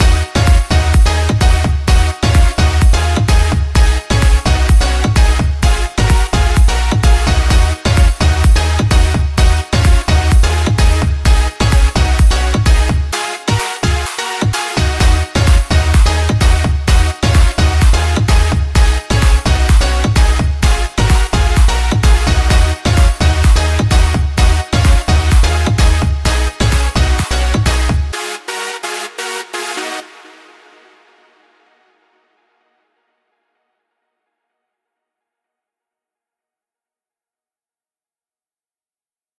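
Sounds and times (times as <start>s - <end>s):
construction kit full music loop: 0.0s - 30.2s.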